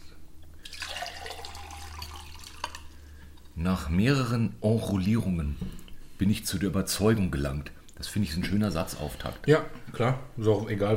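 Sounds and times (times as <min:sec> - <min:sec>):
low hum: 0:00.0 - 0:10.9
water pouring into a glass: 0:00.6 - 0:03.0
speech: 0:03.6 - 0:10.9.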